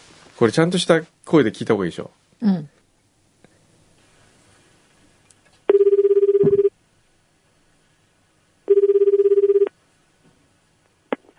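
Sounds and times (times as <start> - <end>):
speech: 0.4 - 2.8
telephone electronic trill ringing on a call to a tourism office: 5.7 - 6.7, 8.7 - 9.7.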